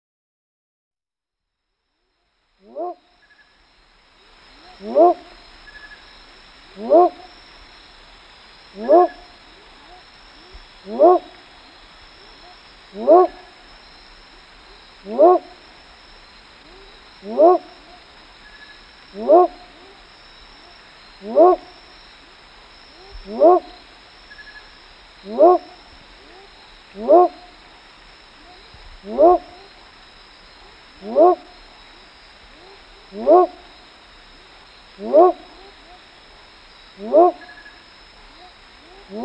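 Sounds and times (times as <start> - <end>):
Leptodactylus myersi: 2.0 - 7.8, 8.6 - 39.2.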